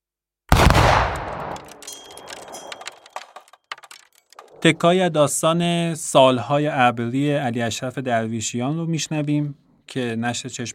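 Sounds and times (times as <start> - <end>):
revolver gunshot with long decay: 0.5 - 1.6
faint clicks and rattles: 1.5 - 4.8
speech: 4.6 - 10.7.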